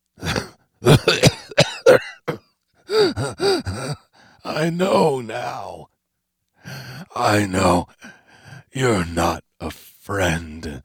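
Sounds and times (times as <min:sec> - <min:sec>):
man coughing in a rough fit: 0:00.2 - 0:04.0
speech: 0:04.6 - 0:05.8, 0:07.2 - 0:08.0, 0:08.8 - 0:10.8.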